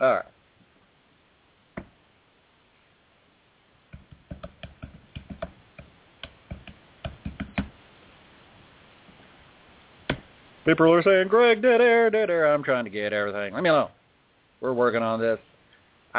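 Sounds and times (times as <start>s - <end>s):
speech: 0.0s - 0.3s, 10.7s - 14.0s, 14.6s - 15.5s
typing on a computer keyboard: 4.0s - 5.6s.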